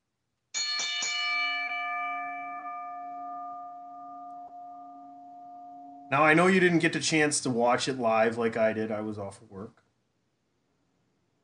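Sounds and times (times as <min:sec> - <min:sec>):
bell ringing: 0:00.6 - 0:06.8
speech: 0:06.1 - 0:09.8.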